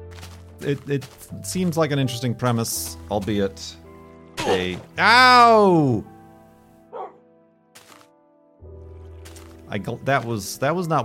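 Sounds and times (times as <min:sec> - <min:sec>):
speech: 0:00.6 - 0:03.8, 0:04.4 - 0:06.1, 0:09.7 - 0:11.0
pet dog giving a short sharp bark: 0:06.9 - 0:07.2.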